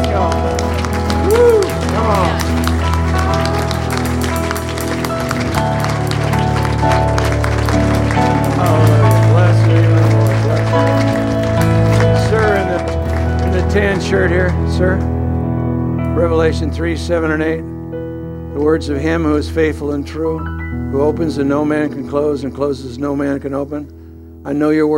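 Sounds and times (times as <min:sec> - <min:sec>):
large congregation clapping and cheering: 0:00.0 - 0:15.6
sustained music: 0:00.0 - 0:24.9
whoops and shouts: 0:01.1 - 0:02.6
speech: 0:16.4 - 0:17.8, 0:18.6 - 0:24.9.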